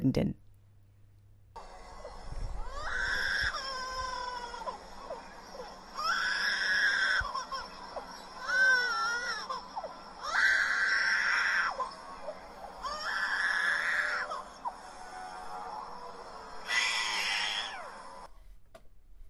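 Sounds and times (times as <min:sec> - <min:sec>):
speech: 0:00.0 - 0:00.4
lyrebird at a zoo imitating a crying baby: 0:02.6 - 0:14.8, 0:16.6 - 0:18.3.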